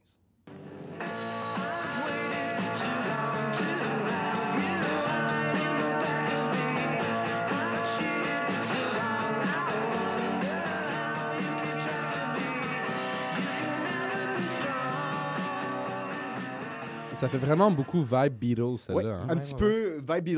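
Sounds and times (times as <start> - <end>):
lo-fi garage indie rock song with guitars and drums: 0.9 - 17.5
speech: 17.2 - 20.3.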